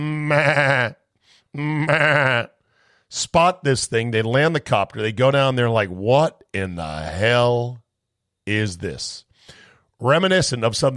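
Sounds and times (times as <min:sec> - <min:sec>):
sheep bleating: 0:00.0 - 0:01.0, 0:01.6 - 0:02.6
speech: 0:00.0 - 0:07.8, 0:08.5 - 0:10.9.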